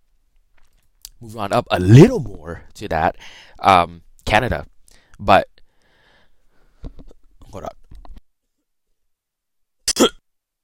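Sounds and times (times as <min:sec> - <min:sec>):
speech: 0:01.2 - 0:05.5, 0:07.6 - 0:07.8
sick person coughing: 0:09.9 - 0:10.2.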